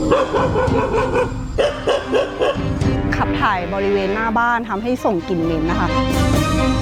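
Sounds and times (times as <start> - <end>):
stray dogs barking: 0.0 - 2.9
speech: 3.6 - 6.7.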